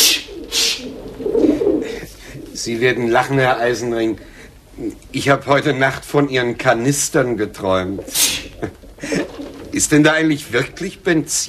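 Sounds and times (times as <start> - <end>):
pigeons cooing while being fed: 0.0 - 5.2, 7.7 - 9.8
speech: 2.6 - 9.2, 9.8 - 11.4.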